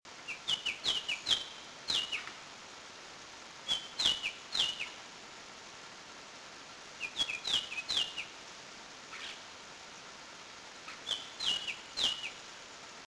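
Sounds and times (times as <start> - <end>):
Icterus leucopteryx leucopteryx calling: 0.2 - 2.4, 3.6 - 5.1, 7.0 - 8.4, 10.8 - 12.5.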